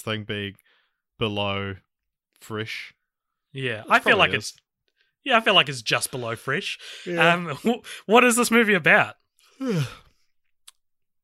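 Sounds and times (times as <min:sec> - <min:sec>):
speech: 0:00.0 - 0:03.0, 0:03.6 - 0:04.6, 0:05.2 - 0:10.0
person yawning: 0:09.6 - 0:10.0.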